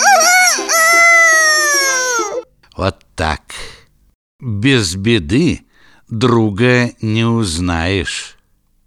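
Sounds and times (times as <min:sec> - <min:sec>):
rooster crowing loudly: 0:00.0 - 0:02.4
speech: 0:02.8 - 0:03.7, 0:04.4 - 0:08.4.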